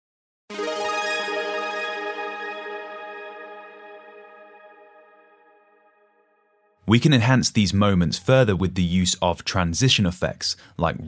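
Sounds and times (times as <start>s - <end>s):
bright synth arpeggiator run with echo and reverb: 0.5s - 6.4s
speech: 6.9s - 11.0s.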